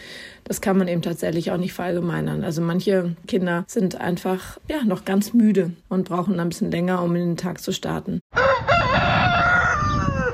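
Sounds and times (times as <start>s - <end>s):
speech: 0.5s - 8.6s
rooster crowing: 8.3s - 10.3s.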